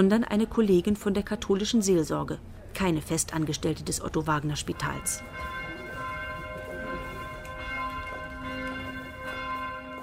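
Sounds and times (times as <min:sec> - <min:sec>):
speech: 0:00.0 - 0:05.6
faint low rumble of outdoor ambience: 0:00.0 - 0:10.0
church bells ringing for midday prayer from church towers overlooking Vienna Austria: 0:04.5 - 0:10.0.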